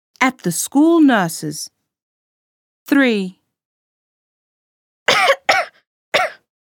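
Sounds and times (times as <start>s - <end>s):
speech: 0.2s - 1.8s, 2.9s - 3.4s
person with the flu coughing harshly at the school nurse's: 5.1s - 6.5s.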